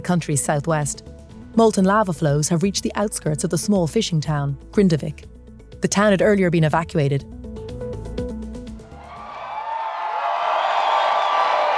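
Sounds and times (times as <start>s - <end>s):
speech: 0.0s - 7.4s
large crowd cheering and whooping outdoors: 8.9s - 11.7s.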